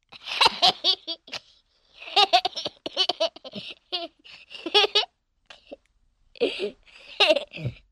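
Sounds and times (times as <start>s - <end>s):
small child laughing infectiously: 0.2s - 1.4s, 2.0s - 5.8s, 6.5s - 7.8s.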